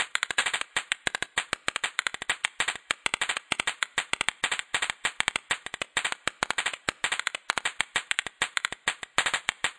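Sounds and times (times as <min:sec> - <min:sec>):
found percussion drum loop: 0:00.0 - 0:09.7.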